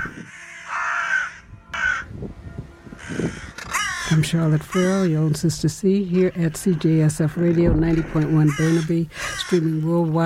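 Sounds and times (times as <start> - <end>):
crow cawing: 0.0 - 2.1, 3.0 - 5.2, 6.4 - 9.9
speech: 4.1 - 10.2.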